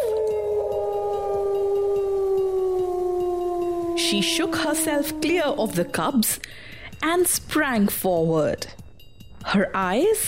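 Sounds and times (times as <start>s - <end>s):
wolf letting out a long sustained cry: 0.0s - 6.2s
speech: 4.0s - 8.8s, 9.4s - 10.2s.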